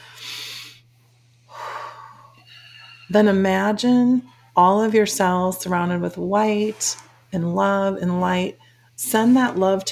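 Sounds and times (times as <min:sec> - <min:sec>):
deep breath: 0:00.0 - 0:00.9, 0:01.5 - 0:03.1
speech: 0:03.1 - 0:09.9.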